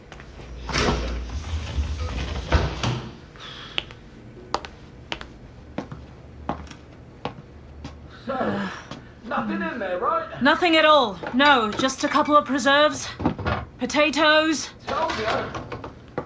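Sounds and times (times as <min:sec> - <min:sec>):
storage door sliding open with a scraping roll: 0:00.4 - 0:03.4
speech: 0:09.4 - 0:13.2, 0:13.8 - 0:15.6.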